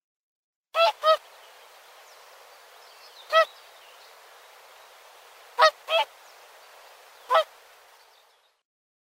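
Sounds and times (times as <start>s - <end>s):
whooper swan Cygnus cygnus honking in Uzbekistan: 0.8s - 1.3s, 3.2s - 3.6s, 5.3s - 7.9s.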